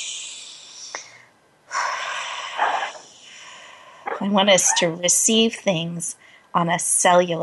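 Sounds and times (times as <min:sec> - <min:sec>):
deep belly breaths: 0:00.0 - 0:04.2, 0:06.2 - 0:06.6
speech: 0:04.2 - 0:07.4.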